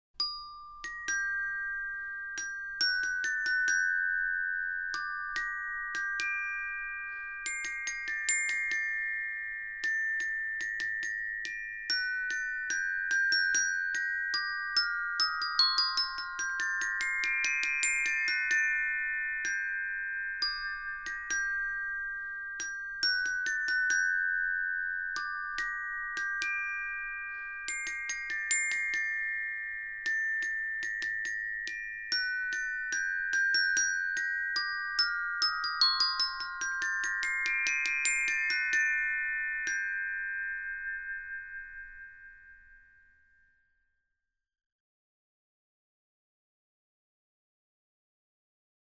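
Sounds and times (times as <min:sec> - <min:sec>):
bells ringing: 0:00.2 - 0:42.7.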